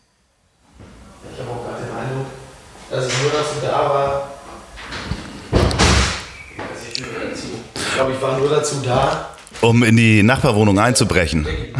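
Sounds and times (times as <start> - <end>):
voices: 1.2 - 11.7
speech: 3.0 - 4.3, 8.0 - 11.7
door slamming shut: 4.9 - 6.4.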